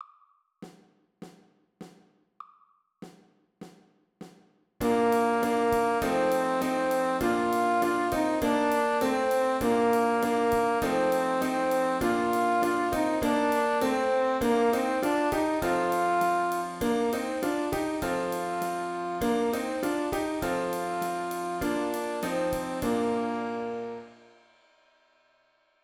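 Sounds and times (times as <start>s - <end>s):
old English saxophone: 4.8s - 24.3s.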